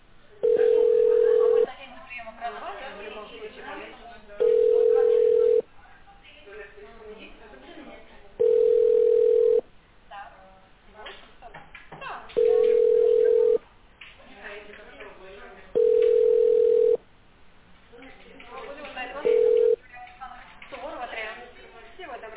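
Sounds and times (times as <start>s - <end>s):
continuous busy murmur: 0.0s - 17.0s, 17.7s - 22.3s
telephone ringback tone from an unanswered call: 0.4s - 1.7s, 4.4s - 5.6s, 8.4s - 9.6s, 12.4s - 13.6s, 15.8s - 17.0s, 19.2s - 19.8s.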